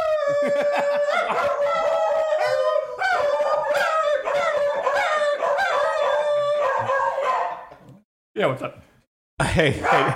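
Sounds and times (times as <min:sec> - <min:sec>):
old dog howling: 0:00.0 - 0:07.7
laughter: 0:00.2 - 0:01.8, 0:09.4 - 0:10.1
speech: 0:08.4 - 0:08.8, 0:09.5 - 0:10.1.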